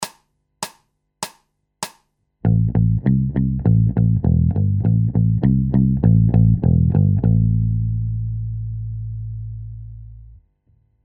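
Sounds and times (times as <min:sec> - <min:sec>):
bass loop: 0:02.4 - 0:10.3.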